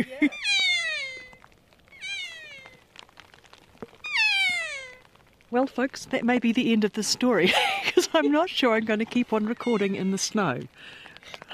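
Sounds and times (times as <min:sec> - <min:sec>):
soft background hiss: 0:00.0 - 0:11.5
Kea giving downslurred wails in heavy snowfall in New Zealand mountains: 0:00.2 - 0:02.8, 0:04.0 - 0:05.1
speech: 0:05.6 - 0:11.4.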